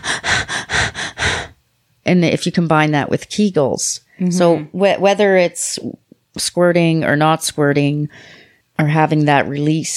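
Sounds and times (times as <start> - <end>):
rapid rhythmic breathing demonstration: 0.0 - 1.6
speech: 2.1 - 9.9.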